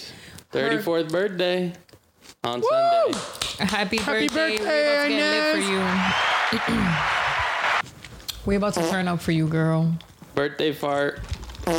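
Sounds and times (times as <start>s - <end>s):
speech: 0.5s - 7.2s, 8.4s - 11.7s
fart noises made with the mouth: 8.8s - 9.0s, 11.6s - 11.7s.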